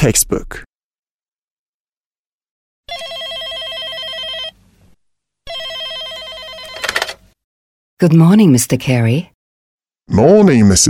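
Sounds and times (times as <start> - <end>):
speech: 0.0 - 0.7, 8.0 - 9.3, 10.1 - 10.8
telephone ringing with a classic trilling bell: 2.9 - 4.6, 5.4 - 7.4.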